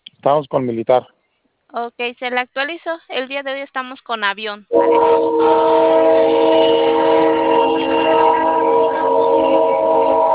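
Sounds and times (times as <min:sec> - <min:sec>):
speech: 0:00.2 - 0:06.9
passing train horn: 0:04.7 - 0:10.3.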